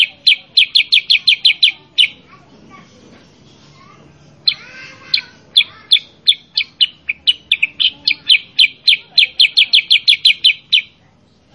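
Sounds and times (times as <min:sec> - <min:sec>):
sooty-headed bulbul song: 0:00.0 - 0:02.3, 0:04.3 - 0:11.0.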